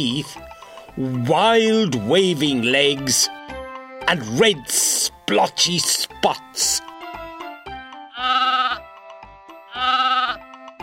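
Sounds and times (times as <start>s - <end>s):
speech: 0.0s - 3.4s, 4.1s - 6.9s
light rhythmic music or tapping: 0.0s - 10.8s
goat bleating: 8.1s - 8.8s, 9.7s - 10.4s.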